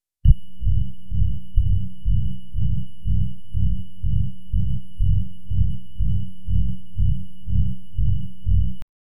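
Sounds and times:
rising digital hum: 0.3 - 8.8.

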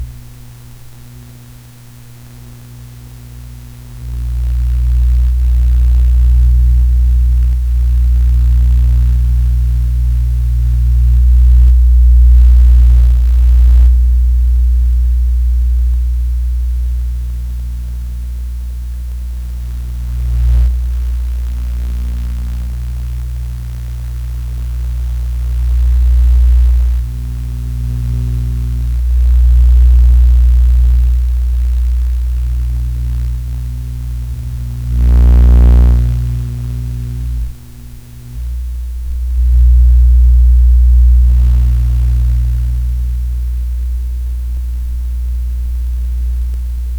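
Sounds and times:
low level broadband hiss: 0.0 - 46.9.

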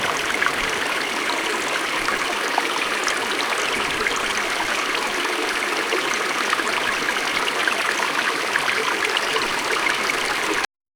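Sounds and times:
babbling brook flowing through a peaceful meadow: 0.0 - 10.7.

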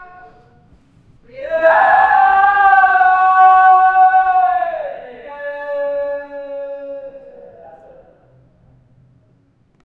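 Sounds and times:
people crying in distress: 1.3 - 8.3.

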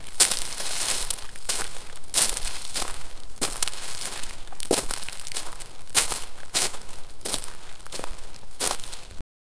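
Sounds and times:
footstep crunch: 0.0 - 9.2.

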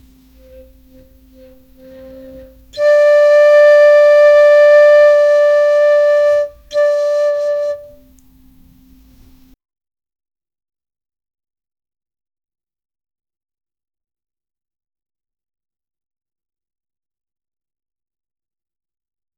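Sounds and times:
soft calm flute: 0.0 - 9.6.

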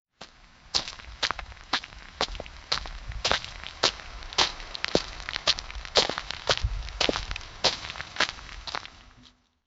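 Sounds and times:
rain falling: 0.2 - 9.3
footsteps: 0.2 - 9.4.

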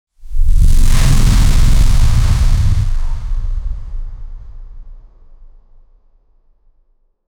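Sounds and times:
motion blur swoosh effect: 0.3 - 4.9.

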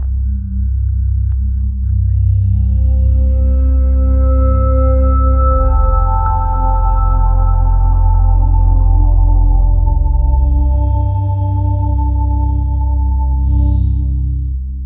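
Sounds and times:
ambient meditation music: 0.0 - 14.8.

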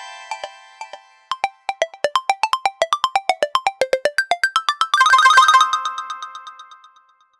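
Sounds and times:
arcade game coin collect sound: 1.3 - 5.9.

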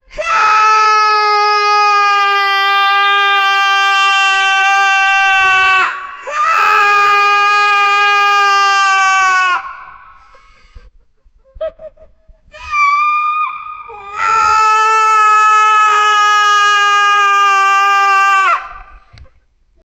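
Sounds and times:
man squealing and screaming: 0.2 - 10.1, 12.6 - 18.9.

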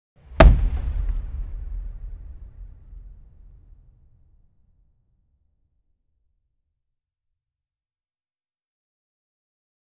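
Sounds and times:
soft wooden thud: 0.4 - 3.4.

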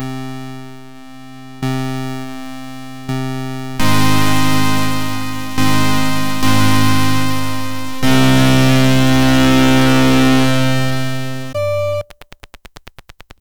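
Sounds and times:
various keyboards typing: 3.8 - 13.4.

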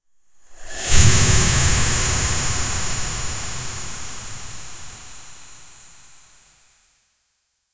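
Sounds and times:
strong high pressure steam hissing: 0.6 - 6.4.

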